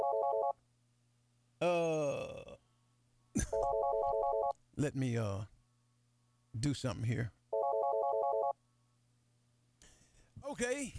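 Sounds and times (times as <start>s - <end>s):
short electronic phone ring from an incoming call: 0.0s - 0.6s, 3.5s - 4.6s, 7.5s - 8.6s
speech: 4.8s - 5.5s, 6.6s - 7.4s, 10.4s - 10.9s.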